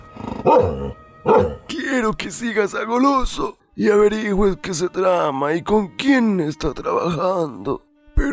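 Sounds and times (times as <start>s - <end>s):
speech: 0.5s - 1.5s, 2.0s - 8.3s
dog yelping barks: 0.5s - 1.6s.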